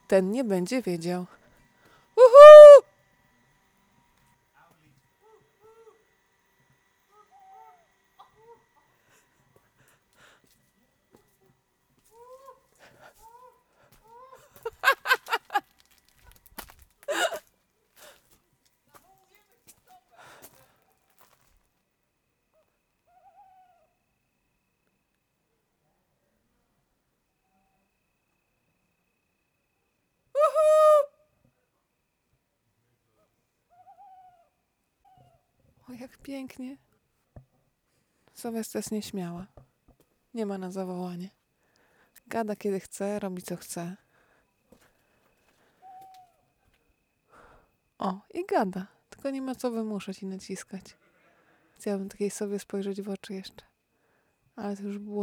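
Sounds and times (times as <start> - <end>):
speech: 0.1 - 1.4, 36.3 - 36.9, 38.4 - 39.6, 40.4 - 41.4, 42.3 - 44.0, 48.0 - 51.0, 51.8 - 53.7, 54.6 - 55.2
human voice imitating an owl hoot to call a wild owl in Alentejo: 2.2 - 2.8, 17.1 - 17.4, 30.4 - 31.2
laughter: 14.6 - 15.6, 17.1 - 17.4.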